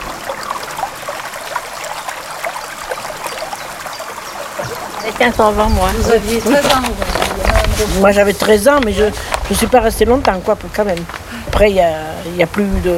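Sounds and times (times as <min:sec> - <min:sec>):
canal water pouring into a river near a silk factory: 0:00.0 - 0:09.6
speech: 0:05.1 - 0:12.9.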